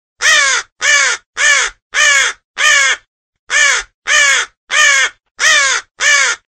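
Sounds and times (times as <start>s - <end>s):
crow calling: 0.2s - 6.5s.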